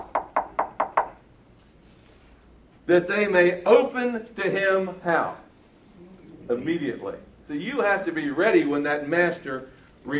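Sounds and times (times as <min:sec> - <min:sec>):
knocking on a door: 0:00.0 - 0:01.2
speech: 0:02.9 - 0:05.4, 0:06.5 - 0:10.1.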